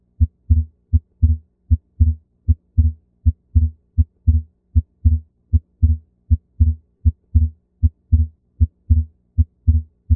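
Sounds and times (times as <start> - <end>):
heart sounds with physiologic split S2: 0.2 - 10.1.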